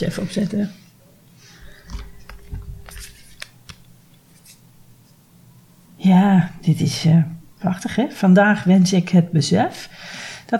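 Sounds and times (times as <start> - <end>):
speech: 0.0 - 0.8, 6.1 - 10.5
low hum: 0.0 - 10.5
deck of cards shuffled by hand: 1.8 - 4.6.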